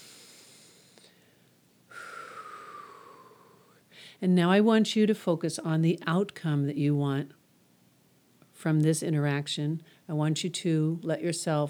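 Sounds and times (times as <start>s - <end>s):
deep breath: 0.0s - 4.2s
speech: 4.2s - 7.4s, 8.6s - 11.6s.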